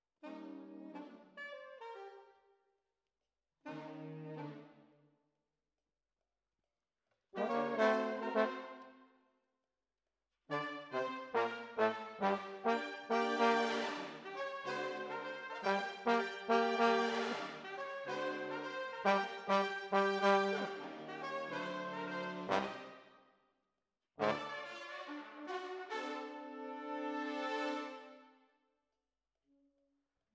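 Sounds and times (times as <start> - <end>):
jazz trombones: 7.4 - 8.9, 10.5 - 23.0, 24.2 - 28.2.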